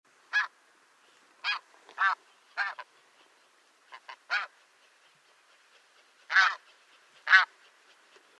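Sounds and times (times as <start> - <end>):
snow goose: 0.3 - 0.5, 1.4 - 2.9, 3.9 - 4.6, 6.3 - 6.6, 7.2 - 7.6.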